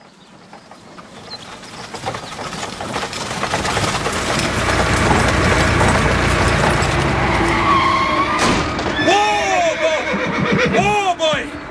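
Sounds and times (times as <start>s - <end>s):
clattering and scraping: 1.9s - 9.0s
cart horse whinnying: 7.1s - 11.4s.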